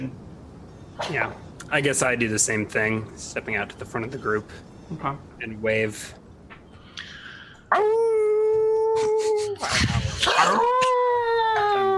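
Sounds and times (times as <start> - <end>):
speech: 0.0 - 0.2, 1.0 - 6.2
person imitating a howl: 7.7 - 11.9.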